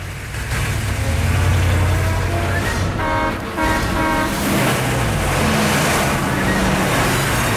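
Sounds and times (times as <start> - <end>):
armored trucks rolling along a downtown street: 0.0 - 7.5
horn-like toot: 2.9 - 4.7.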